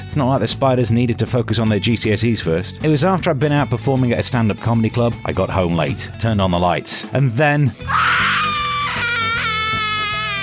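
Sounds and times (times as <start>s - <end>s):
speech: 0.2s - 8.6s
man screaming in fright: 7.9s - 10.4s.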